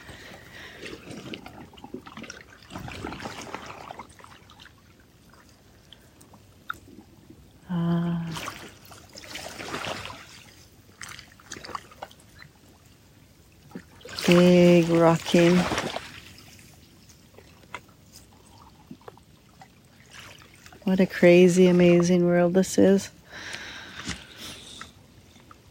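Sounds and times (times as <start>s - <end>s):
water lapping against a bay shoreline: 0.0s - 25.6s
speech: 14.3s - 15.9s, 20.9s - 23.5s.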